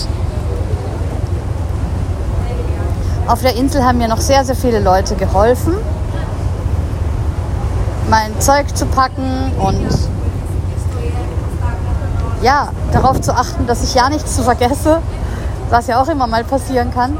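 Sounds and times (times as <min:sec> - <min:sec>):
low rumble of a moving boat: 0:00.0 - 0:17.1
strong wind rushing past moving boat: 0:00.0 - 0:17.1
speech: 0:03.3 - 0:06.0, 0:08.1 - 0:10.2, 0:12.4 - 0:17.1.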